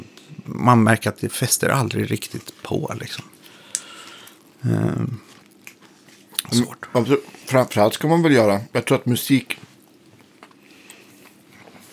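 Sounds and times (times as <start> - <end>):
low hum: 0.0 - 11.9
speech: 0.5 - 3.3, 4.6 - 5.3, 6.5 - 9.7
person chewing a sweet bun: 3.2 - 7.6, 9.6 - 11.9.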